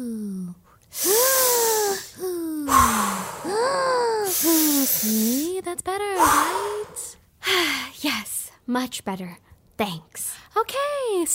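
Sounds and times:
speech: 0.9s - 1.1s, 8.7s - 11.3s
slow deliberate deep breaths inhaling and exhaling: 0.9s - 5.5s, 6.2s - 7.9s.

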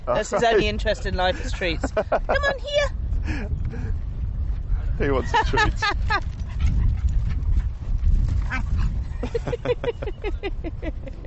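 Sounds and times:
laughter: 0.1s - 2.6s, 5.1s - 6.2s, 9.2s - 11.2s
speech: 0.1s - 3.8s, 5.0s - 6.3s, 8.5s - 11.2s
dogs snorting and panting: 6.1s - 9.6s.

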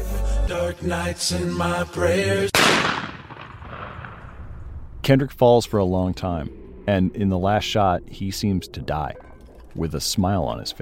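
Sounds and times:
speech: 0.5s - 3.1s, 5.0s - 10.8s
police officer's gunshot with echo: 2.6s - 4.4s.

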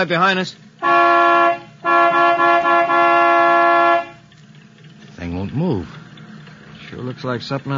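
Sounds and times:
speech: 0.0s - 1.0s, 5.5s - 6.0s, 6.9s - 7.7s
loud truck horn honking: 0.8s - 4.3s.

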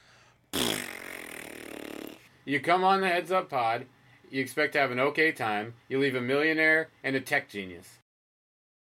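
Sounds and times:
long slow sad fart sound: 0.5s - 2.3s
speech: 2.4s - 8.0s.

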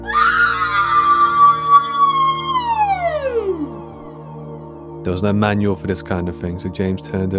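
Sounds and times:
machine-like scream of a newly booted AI machine: 0.0s - 4.0s
speech: 5.0s - 7.3s.

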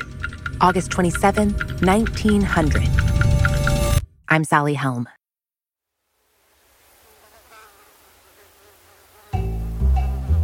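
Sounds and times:
speech: 0.6s - 3.1s, 4.3s - 5.2s
mosquitoes buzzing in glass vials: 6.6s - 10.4s.

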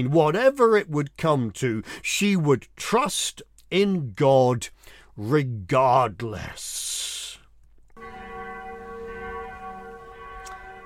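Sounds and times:
speech: 0.0s - 7.2s
mission bell ringing: 8.0s - 10.8s.

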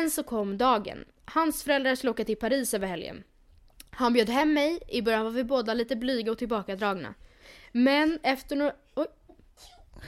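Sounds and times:
speech: 0.0s - 3.3s, 4.0s - 10.0s
person sneezing: 9.6s - 10.0s.

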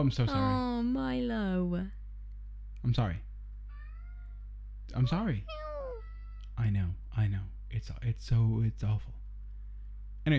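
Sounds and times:
speech: 0.0s - 2.0s, 2.8s - 3.3s, 4.9s - 5.6s, 6.6s - 9.2s
steady low hum: 0.0s - 10.3s
cat meowing plaintively: 3.7s - 4.4s, 5.0s - 6.4s.

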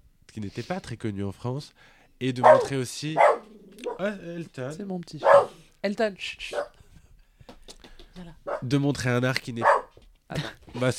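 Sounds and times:
speech: 0.4s - 6.8s, 8.2s - 10.9s
dog giving sharp high barks: 2.4s - 4.1s, 5.2s - 5.6s, 6.5s - 6.8s, 8.5s - 8.7s, 9.6s - 9.9s.

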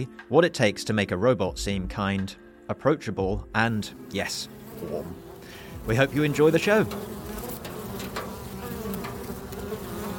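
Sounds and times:
speech: 0.0s - 7.4s
swarm of bees buzzing: 3.9s - 10.1s.

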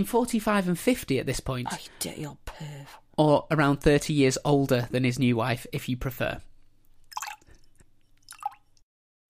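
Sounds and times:
speech: 0.0s - 6.5s
liquid dripping: 6.8s - 8.8s.

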